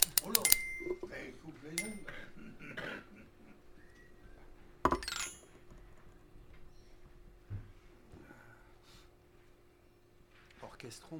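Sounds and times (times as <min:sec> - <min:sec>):
glasses clinking together in a toast: 0:00.2 - 0:01.1, 0:01.8 - 0:02.1, 0:04.9 - 0:05.5
speech: 0:10.9 - 0:11.1.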